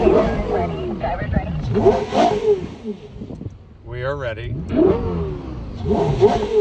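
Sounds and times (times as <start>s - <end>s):
Porsche Carrera GT sports car engine revving: 0.0s - 6.6s
speech: 0.2s - 2.3s, 4.1s - 6.6s.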